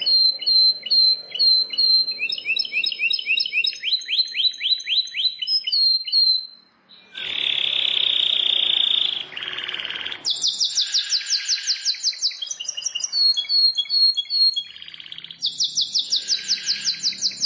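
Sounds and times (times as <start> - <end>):
plain prinia song: 0.0 - 17.4.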